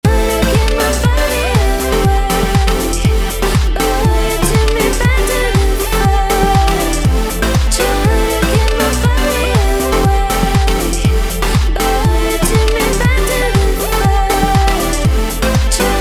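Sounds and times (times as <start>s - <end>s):
synth EDM music: 0.0s - 15.9s.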